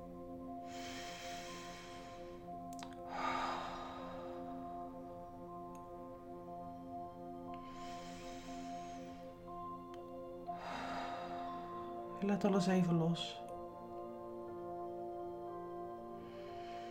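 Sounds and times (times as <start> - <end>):
quiet sustained musical drone: 0.0 - 16.9
slow deep breaths in and out during a guided relaxation exercise: 0.3 - 5.6, 7.4 - 9.8, 10.4 - 12.2, 15.8 - 16.9
speech: 12.2 - 13.4.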